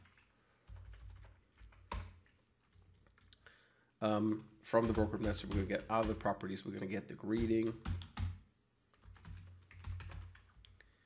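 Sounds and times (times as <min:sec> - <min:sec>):
typing on a computer keyboard: 0:00.0 - 0:03.4, 0:04.8 - 0:06.3, 0:07.3 - 0:10.8
speech: 0:04.0 - 0:08.0.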